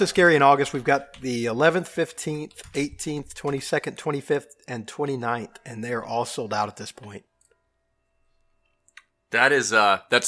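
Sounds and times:
crisp clicks from a computer keyboard: 0.0 - 4.7
speech: 0.0 - 7.3, 9.3 - 10.2.

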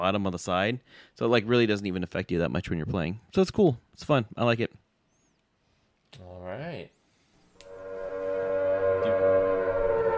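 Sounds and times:
speech: 0.0 - 4.8, 6.1 - 7.0
siren wailing: 7.6 - 10.1.

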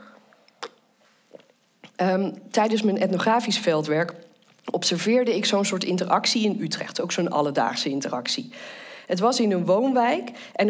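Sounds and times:
faint breathy mouth noises: 0.0 - 2.0
person sipping water: 0.0 - 2.0, 4.2 - 4.7
person swallowing: 0.0 - 2.0
speech: 2.0 - 10.6.

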